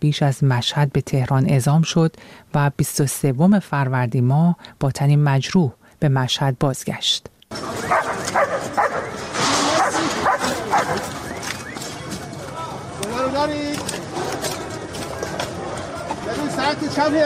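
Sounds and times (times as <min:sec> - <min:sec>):
speech: 0:00.0 - 0:09.6, 0:13.4 - 0:14.0, 0:16.6 - 0:17.2
movement noise: 0:07.5 - 0:16.6
search and rescue dog barking and yipping: 0:07.8 - 0:11.3.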